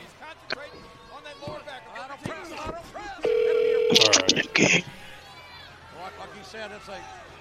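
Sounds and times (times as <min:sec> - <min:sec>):
steady loud telephone call tone: 0:03.2 - 0:04.8
voices: 0:03.2 - 0:05.1
speech: 0:06.6 - 0:07.3.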